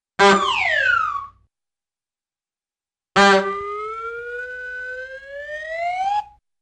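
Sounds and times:
cartoon bulb horn honk: 0:00.2 - 0:00.6, 0:03.2 - 0:03.5
cartoon slow descending ascending whistle: 0:00.4 - 0:01.3, 0:03.5 - 0:06.3.

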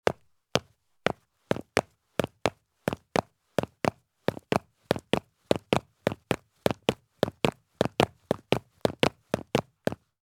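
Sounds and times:
heavy work boots galloping down concrete stairs: 0:00.1 - 0:10.0.

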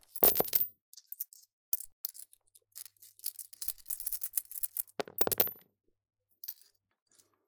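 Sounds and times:
coins jingling: 0:00.2 - 0:00.7, 0:05.0 - 0:05.6.

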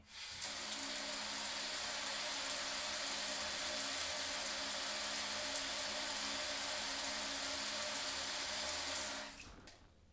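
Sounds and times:
liquid in a bathtub: 0:00.0 - 0:10.1.

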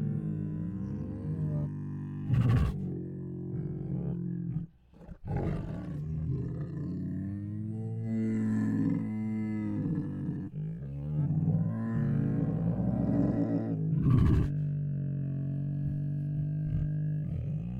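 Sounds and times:
hungry tiger groaning: 0:00.0 - 0:17.7.

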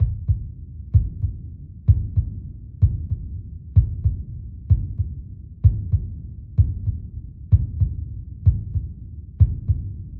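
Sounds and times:
slow heartbeat: 0:00.0 - 0:10.1.

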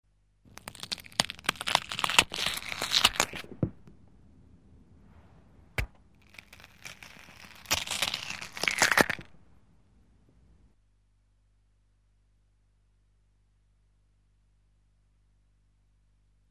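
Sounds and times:
eyeballs being gouged horror sound effect: 0:00.5 - 0:03.9, 0:05.8 - 0:09.3.

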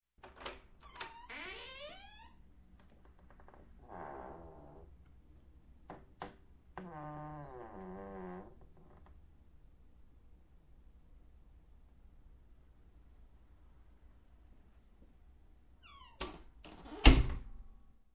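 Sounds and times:
wooden door squeaking open and closed: 0:00.3 - 0:02.4, 0:03.4 - 0:04.8, 0:06.8 - 0:09.1, 0:15.8 - 0:17.4.

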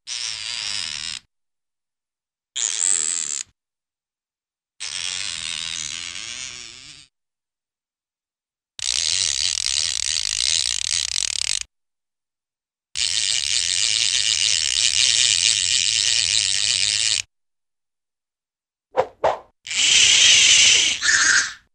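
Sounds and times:
fishing reel winding with rapid ratchet-like plastic clicks: 0:00.1 - 0:01.3, 0:02.6 - 0:03.4, 0:04.8 - 0:07.1, 0:08.8 - 0:11.7, 0:13.0 - 0:17.3, 0:19.7 - 0:21.6.

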